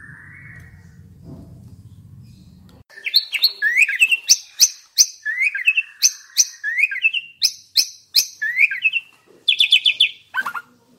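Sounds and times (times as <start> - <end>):
Asian pied starling singing: 2.9 - 10.8.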